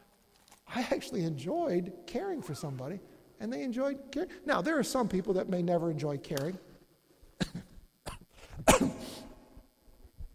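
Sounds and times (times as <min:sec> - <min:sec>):
speech: 0:00.8 - 0:06.7
person clearing throat: 0:07.4 - 0:09.4.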